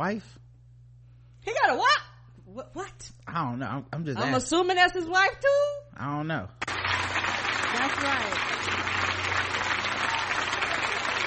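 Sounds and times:
speech: 0:00.0 - 0:00.4, 0:01.4 - 0:02.0, 0:02.6 - 0:06.7, 0:07.8 - 0:09.3
crowd clapping: 0:06.6 - 0:11.2.

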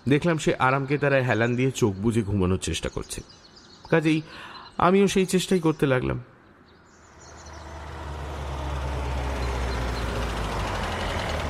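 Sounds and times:
speech: 0:00.0 - 0:06.3
broadband road roar: 0:06.9 - 0:11.4
police van engine driving up toward a hilltop fort: 0:07.1 - 0:11.4.

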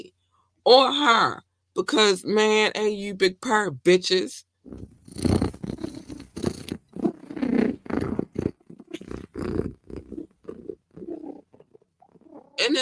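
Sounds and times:
speech: 0:00.7 - 0:04.9
cat purring: 0:04.7 - 0:12.8.

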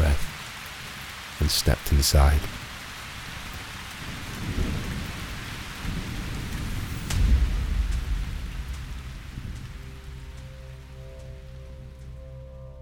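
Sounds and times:
steady rain falling: 0:00.0 - 0:12.7
speech: 0:01.5 - 0:02.6
low rolling thunder rumbling: 0:04.0 - 0:12.0
sharp thunder crack: 0:04.3 - 0:10.4.

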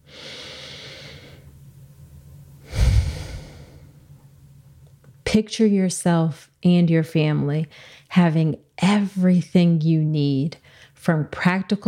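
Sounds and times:
deep breath: 0:00.0 - 0:01.5, 0:02.6 - 0:04.0, 0:07.7 - 0:08.1
speech: 0:05.4 - 0:11.8.

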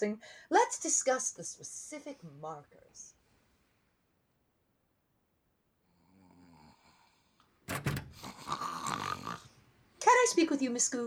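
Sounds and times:
speech: 0:00.0 - 0:03.2, 0:07.7 - 0:11.0
person snoring in a large room: 0:05.9 - 0:07.4, 0:08.2 - 0:09.6.

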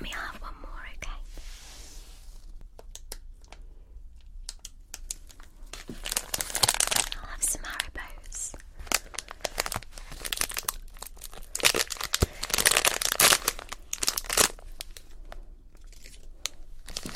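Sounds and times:
Halloween candy wrappers crinkling and tearing: 0:04.4 - 0:17.1.

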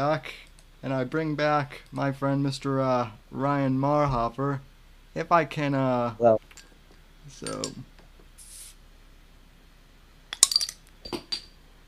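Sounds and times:
speech: 0:00.0 - 0:06.4, 0:07.3 - 0:07.9
soft hiss: 0:00.0 - 0:11.8
glasses clinking together in a toast: 0:07.4 - 0:07.8, 0:10.4 - 0:11.6.

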